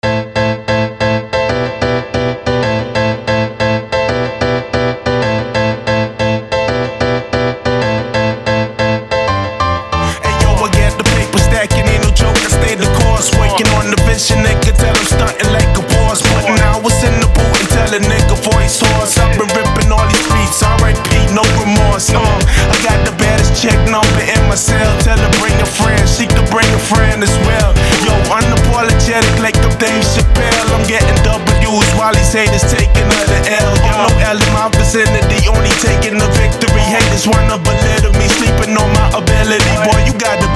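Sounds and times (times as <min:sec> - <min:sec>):
motivational hip hop background music: 0:00.0 - 0:40.5
person rapping: 0:10.0 - 0:40.5.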